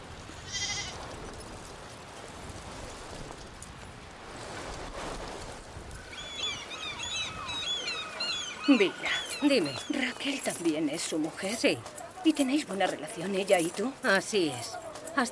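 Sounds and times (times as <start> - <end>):
constant noisy background: 0.0 - 15.3
flock of sheep or goats bleating as a herd is gathered: 0.5 - 1.0
speech: 8.7 - 15.3.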